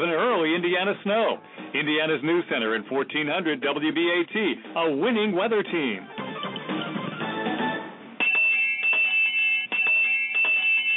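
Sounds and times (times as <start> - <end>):
speech: 0.0 - 6.8
handbell ringing: 8.2 - 10.9.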